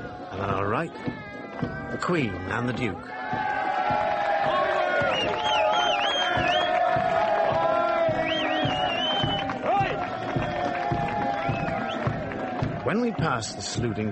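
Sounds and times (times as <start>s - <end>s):
large crowd cheering and shouting: 0.0s - 14.1s
speech: 0.4s - 4.0s, 12.9s - 14.1s
high whistles and whoops: 4.5s - 12.3s.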